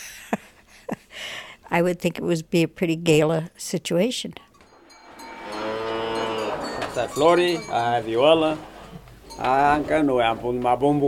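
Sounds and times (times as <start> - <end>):
speech: 1.7 - 4.4, 7.0 - 8.7, 9.4 - 11.0
heifer mooing: 4.6 - 9.9.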